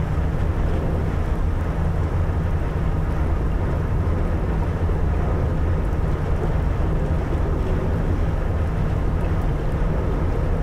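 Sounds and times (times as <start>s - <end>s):
icebreaker engine room hum: 0.0s - 10.6s
water washing against icebreaker hull: 0.0s - 10.6s.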